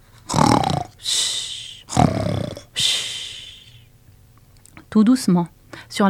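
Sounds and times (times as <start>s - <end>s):
voice imitating a sleeping wolf snoring: 0.2s - 3.7s
speech: 5.0s - 6.0s.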